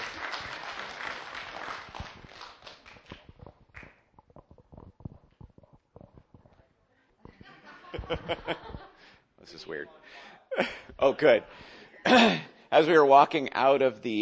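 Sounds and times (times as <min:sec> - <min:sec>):
crowd applauding: 0:00.0 - 0:04.0
laughter: 0:07.3 - 0:09.2
speech: 0:08.0 - 0:14.2.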